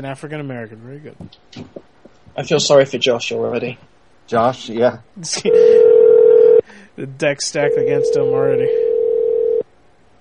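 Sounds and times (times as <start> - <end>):
speech: 0.0 - 1.8, 2.4 - 5.9, 7.0 - 8.8
electronic phone ringback tone on an outgoing call: 5.5 - 6.6, 7.7 - 9.6.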